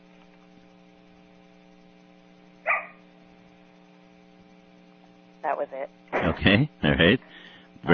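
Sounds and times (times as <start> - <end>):
quiet steady hum: 0.0 - 7.9
single dog isolation bark: 2.6 - 3.0
speech: 5.4 - 7.9.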